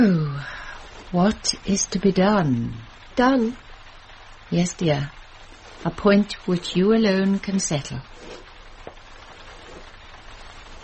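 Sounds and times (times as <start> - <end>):
speech: 0.0 - 3.7, 4.5 - 5.2, 5.8 - 8.4
rain: 0.0 - 10.8.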